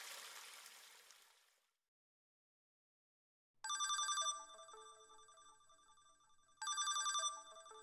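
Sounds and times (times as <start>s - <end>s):
mobile phone ringtone: 3.7s - 7.8s.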